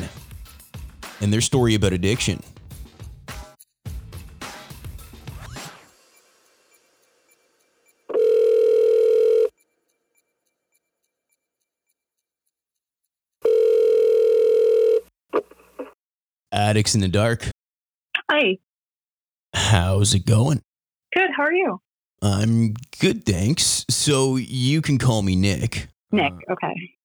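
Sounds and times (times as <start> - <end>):
speech: 1.2 - 2.6, 16.7 - 17.6, 18.4 - 18.7, 19.7 - 27.0
phone being dialed: 8.1 - 9.5, 13.4 - 15.0.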